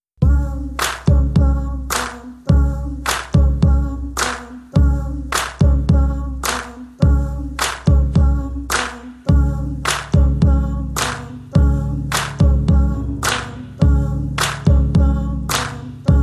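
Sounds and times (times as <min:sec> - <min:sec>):
boxy bass: 0:00.2 - 0:04.2, 0:04.8 - 0:16.2.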